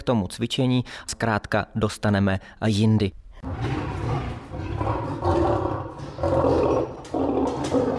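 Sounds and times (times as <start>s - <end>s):
speech: 0.0s - 3.8s
lion roaring: 3.4s - 7.9s.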